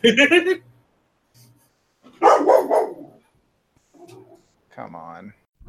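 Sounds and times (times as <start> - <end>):
speech: 0.0 - 0.6, 4.8 - 5.4
dog barking: 2.1 - 3.2, 4.0 - 4.5.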